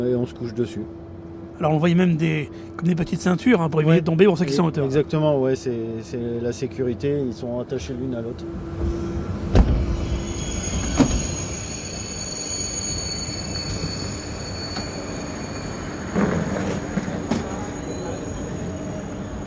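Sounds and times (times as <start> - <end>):
speech: 0.0 - 1.0, 1.6 - 9.0
night train rumble and hum at a railway station: 0.0 - 19.4
high whining tones: 8.4 - 19.4.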